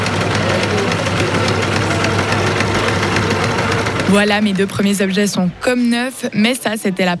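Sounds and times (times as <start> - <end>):
sewing machine stitching: 0.0 - 5.0
speech: 4.1 - 7.1.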